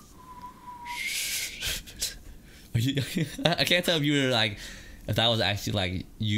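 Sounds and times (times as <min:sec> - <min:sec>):
failed attempt at whistling: 0:00.0 - 0:01.8
speech: 0:02.8 - 0:06.3.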